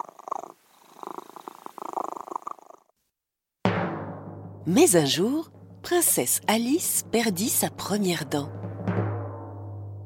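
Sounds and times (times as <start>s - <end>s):
cat purring: 0.0s - 3.0s
speech: 4.7s - 8.6s.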